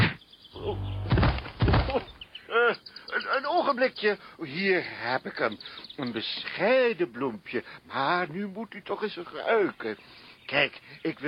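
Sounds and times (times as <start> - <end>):
heavy dull thumps of blows colliding: 0.7 - 2.2
speech: 3.7 - 11.2.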